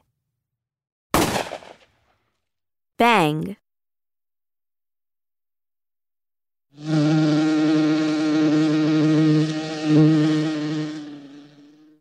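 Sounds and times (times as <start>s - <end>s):
speech: 3.0s - 3.6s, 6.8s - 7.1s
insect buzzing: 6.8s - 11.9s.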